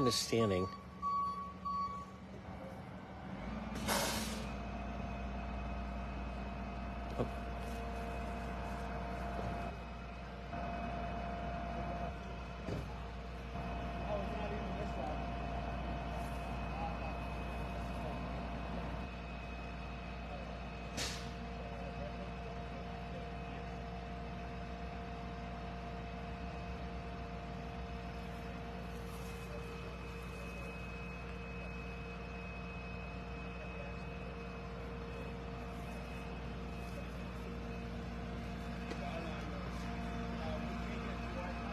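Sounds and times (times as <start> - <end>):
speech: 0.0 - 0.8
faint truck reversing beeps: 0.0 - 2.8, 4.4 - 41.7
heavy truck engine drone: 0.0 - 41.7
heavy truck air brake hiss: 3.8 - 4.6, 21.0 - 21.3
voices murmuring: 5.0 - 41.7.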